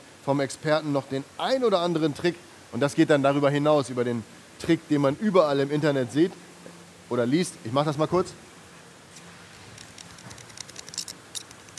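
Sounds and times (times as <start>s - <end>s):
speech: 0.2s - 6.5s, 7.1s - 8.4s
fresh asparagus spears rubbed together squeaking: 9.6s - 11.7s.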